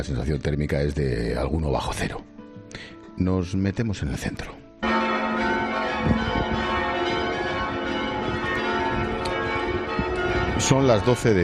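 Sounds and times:
speech: 0.0 - 4.6, 10.6 - 11.4
cathedral church bells pealing: 4.8 - 11.4.

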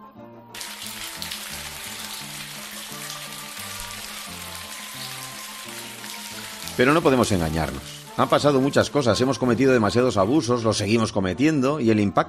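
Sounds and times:
steady dense rainfall: 0.6 - 9.9
speech: 6.8 - 12.2.

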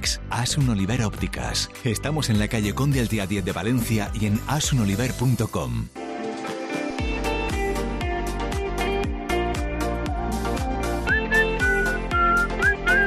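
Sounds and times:
speech: 0.0 - 6.0
steady punchy musical backing beat: 6.0 - 13.0
person whistling a short melody with sliding notes: 11.0 - 13.0.

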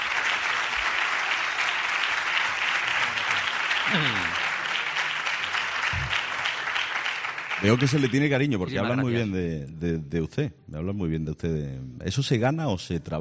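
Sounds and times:
large audience applauding a university rector: 0.0 - 8.6
speech: 7.6 - 13.2.

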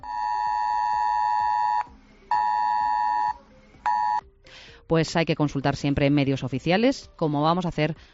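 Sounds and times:
ES-Alert emergency phone alert tone: 0.0 - 4.2
faint rhythmic pulsing: 0.0 - 5.0
speech: 4.9 - 8.1.

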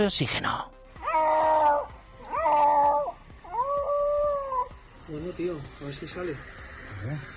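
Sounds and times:
speech: 0.0 - 0.8, 5.1 - 7.3
cat meowing after rescue from fire: 1.0 - 4.7.

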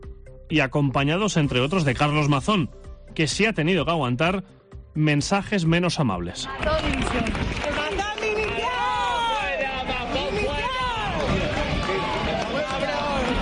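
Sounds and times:
speech: 0.5 - 7.9
crowd applauding: 6.4 - 13.4
dense crowd shouting: 7.8 - 13.4.

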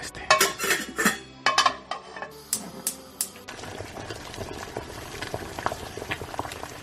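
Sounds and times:
pots and pans clanking in a busy kitchen: 0.3 - 3.4
bubbling and sizzling of boiling and cooking: 2.3 - 6.8.

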